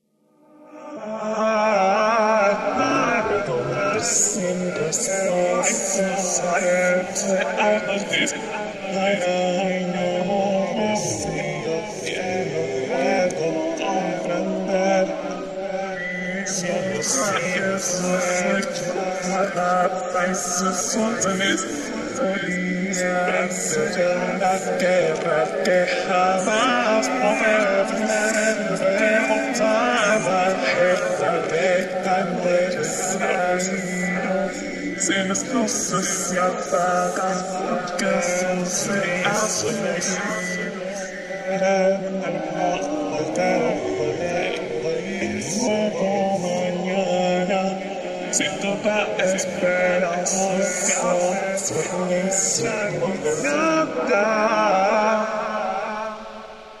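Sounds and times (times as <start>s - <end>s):
electronic 80s-style a cappella vocals in C: 0.0s - 56.7s.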